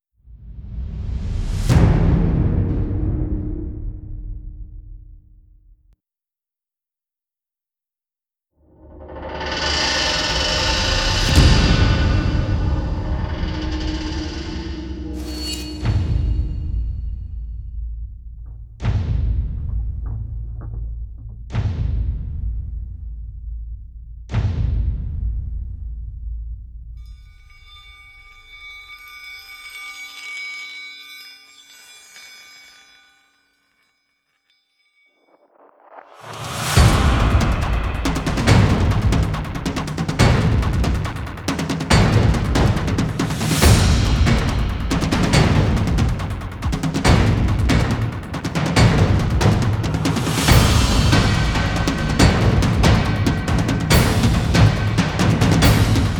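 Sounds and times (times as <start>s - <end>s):
drums and percussion mix: 0.4s - 5.7s, 8.8s - 29.5s, 35.2s - 56.1s.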